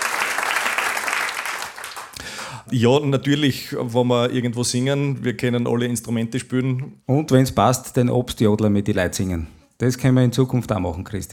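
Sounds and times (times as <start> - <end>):
audience applause for a singer: 0.0 - 2.6
speech: 2.7 - 11.3.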